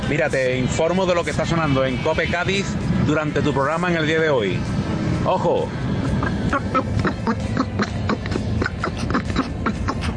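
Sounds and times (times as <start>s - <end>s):
speech: 0.1s - 7.6s
cartoon duck-like quacking voice on a radio broadcast in Cádiz: 6.2s - 10.1s.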